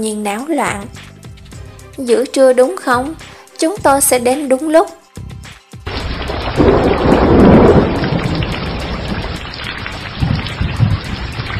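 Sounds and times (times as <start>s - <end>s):
speech: 0.0s - 1.1s, 2.0s - 5.0s
heavy pouring rain: 5.9s - 11.5s
thunderclap with deep rumble: 5.9s - 11.5s.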